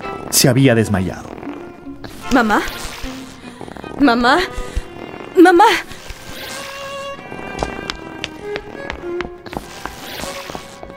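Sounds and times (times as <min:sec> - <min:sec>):
speech: 0:00.3 - 0:01.3, 0:02.3 - 0:02.9, 0:04.0 - 0:04.7, 0:05.4 - 0:05.9
footsteps of a person running out of a room: 0:06.9 - 0:10.9.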